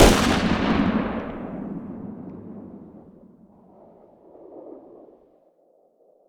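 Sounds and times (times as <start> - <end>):
distant .50 AE pistol gunshot outdoors: 0.0 - 3.0.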